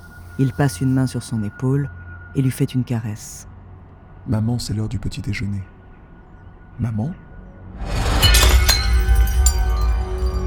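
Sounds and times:
speech: 0.4s - 3.5s, 4.2s - 5.7s, 6.8s - 7.2s
glass shattering from a dropped tray: 7.8s - 10.4s
glass shards clinking and tinkling: 8.0s - 10.4s.

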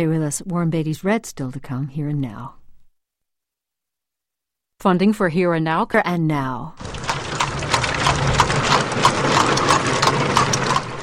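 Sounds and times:
speech: 0.0s - 2.6s, 4.8s - 6.9s
horse-drawn buggy hooves clip-clopping on pavement: 6.8s - 11.0s
low engine rumble: 6.8s - 11.0s
road noise: 6.8s - 11.0s.

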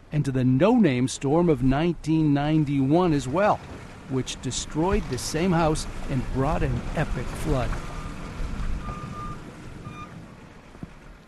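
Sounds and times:
low rumbling engine drone of trucks and front-end loaders: 0.0s - 11.2s
speech: 0.1s - 7.9s
reversing beeps from trucks and front-end loaders clearing storm-deposited sand: 7.9s - 8.2s, 8.8s - 10.1s.

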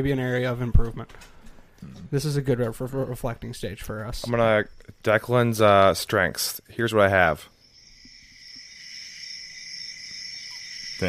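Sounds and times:
speech: 0.0s - 7.5s
crickets chirping: 3.4s - 11.0s.

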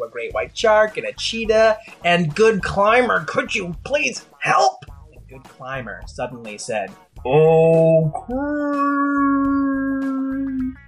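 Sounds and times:
speech: 0.2s - 9.6s
voice imitating a whale song: 7.3s - 10.8s.

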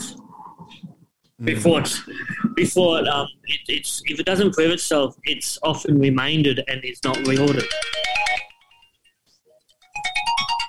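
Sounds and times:
speech: 1.4s - 8.0s
mobile phone ringtone: 7.1s - 9.2s, 9.8s - 10.6s.

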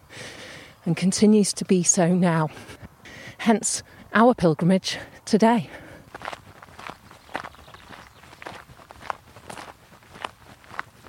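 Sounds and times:
speech: 0.8s - 6.4s
footsteps walking up a gentle climb along a track: 5.8s - 11.0s.

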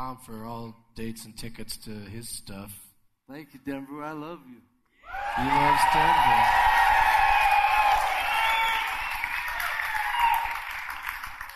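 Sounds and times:
speech: 0.1s - 6.7s
crowd applauding: 5.1s - 11.5s.

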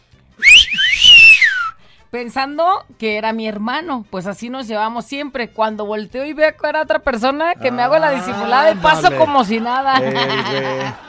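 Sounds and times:
person whistling to get attention: 0.4s - 1.8s
speech: 2.1s - 11.0s
laughter: 7.6s - 11.0s.

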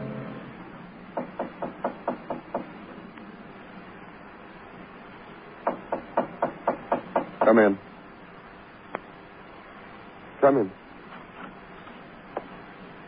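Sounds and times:
knocking on a door: 1.2s - 2.8s, 5.6s - 7.6s
speech: 7.6s - 7.8s, 10.5s - 10.8s.

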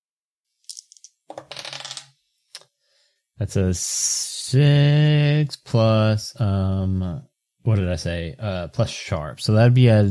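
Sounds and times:
dice rattling and tumbling across a hard surface: 0.7s - 2.1s
speech: 3.4s - 10.0s.

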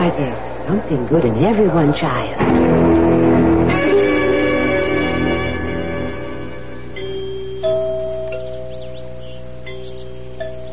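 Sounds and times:
speech: 0.1s - 3.4s
deep resonant door chimes of a grand house ringing: 3.8s - 10.7s.

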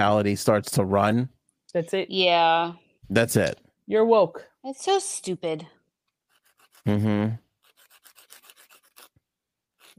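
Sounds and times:
speech: 0.0s - 5.8s, 6.8s - 7.4s
fingernail being filed in back-and-forth strokes: 6.2s - 9.9s.

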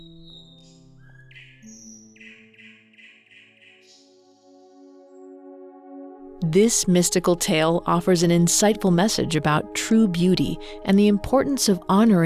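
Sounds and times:
nightingale singing in chirps and trills: 0.0s - 4.6s
steady sustained musical drone: 1.6s - 12.2s
speech: 6.5s - 12.2s.

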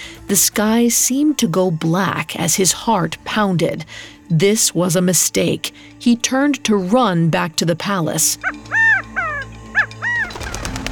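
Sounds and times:
speech: 0.3s - 8.8s
partridge chirping in a frenzy: 8.0s - 10.7s.

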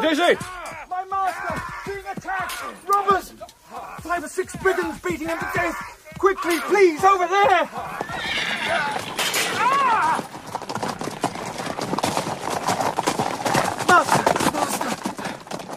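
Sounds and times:
horse galloping: 0.0s - 15.7s
speech: 0.1s - 1.7s, 2.3s - 10.3s, 13.9s - 14.8s
horse neighing: 7.2s - 11.4s.

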